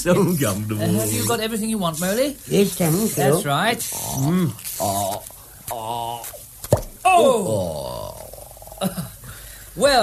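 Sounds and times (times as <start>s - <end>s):
speech: 0.0s - 6.4s, 7.1s - 8.1s, 8.8s - 9.0s, 9.8s - 10.0s
wine bottle uncorked with a sharp pop: 6.6s - 7.0s.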